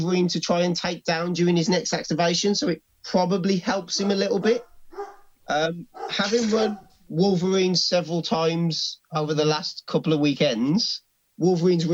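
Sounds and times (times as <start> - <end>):
speech: 0.0 - 11.9
dogs barking: 3.8 - 7.0.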